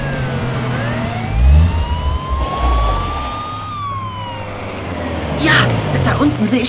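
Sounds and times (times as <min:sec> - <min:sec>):
police car siren wailing: 0:00.0 - 0:06.3
low vehicle engine rumble: 0:00.0 - 0:06.6
speech: 0:06.4 - 0:06.6.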